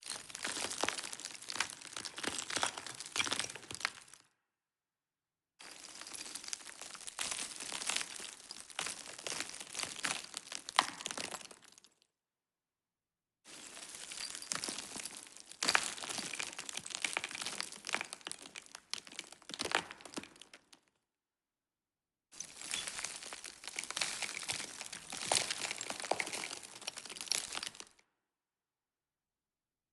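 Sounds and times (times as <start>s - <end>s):
reverberant dirt and stone crash: 0.0s - 4.2s, 5.6s - 11.8s, 13.5s - 20.8s, 22.4s - 28.0s.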